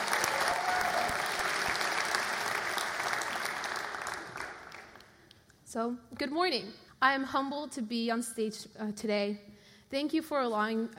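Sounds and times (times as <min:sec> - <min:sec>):
large audience applause: 0:00.0 - 0:05.1
speech: 0:05.7 - 0:10.9.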